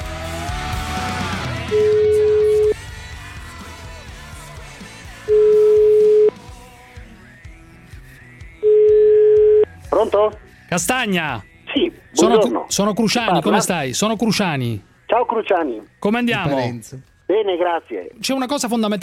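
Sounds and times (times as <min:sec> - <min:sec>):
telephone call tones on an outgoing call being dialled: 0:01.8 - 0:02.8, 0:05.3 - 0:06.3, 0:08.6 - 0:09.7
speech: 0:10.0 - 0:11.5, 0:12.2 - 0:19.0.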